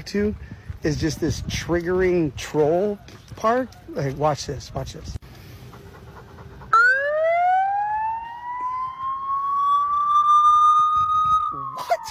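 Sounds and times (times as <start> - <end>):
speech: 0.0 - 5.2
electronic siren from fire-themed equipment in a children's park: 6.7 - 12.0.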